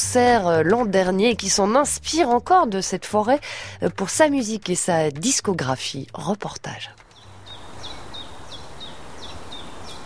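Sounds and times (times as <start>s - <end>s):
speech: 0.1s - 7.0s
birds singing in a forest: 6.8s - 10.0s
outdoor ambience hush: 6.8s - 10.0s.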